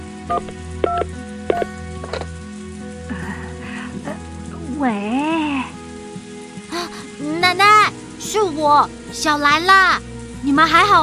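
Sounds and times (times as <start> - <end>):
soft hissy crackle on the phone line: 0.0 - 11.0
electronic keypad beeps of a phone being dialed: 0.3 - 1.7
speech: 0.3 - 2.2, 4.8 - 5.7, 7.5 - 11.0.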